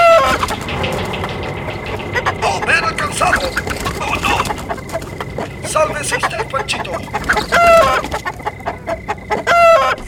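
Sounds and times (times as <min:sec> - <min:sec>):
hens clucking and squawking: 0:00.0 - 0:10.0
rooster crowing: 0:06.8 - 0:10.0.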